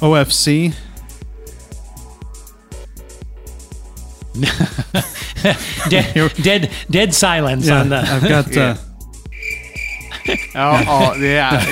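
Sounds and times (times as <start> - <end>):
speech: 0.0 - 0.9, 4.4 - 8.9, 10.3 - 11.7
laughter: 4.4 - 8.8, 10.1 - 11.7
high-pitched chirring of crickets: 9.3 - 11.4.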